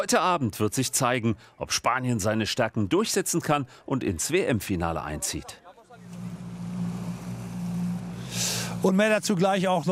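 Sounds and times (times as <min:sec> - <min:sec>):
speech: 0:00.0 - 0:05.6, 0:08.8 - 0:09.9
boat engine drone on water: 0:06.0 - 0:09.0.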